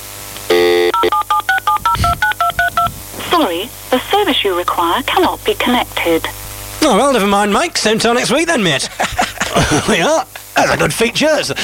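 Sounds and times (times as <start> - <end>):
mobile phone touch-tone dialing beeps: 0.9 - 2.9
speech: 3.4 - 11.6
laughter: 8.0 - 11.6.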